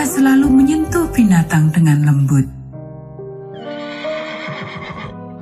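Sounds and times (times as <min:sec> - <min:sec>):
speech: 0:00.2 - 0:02.6
horse neighing: 0:03.5 - 0:05.2.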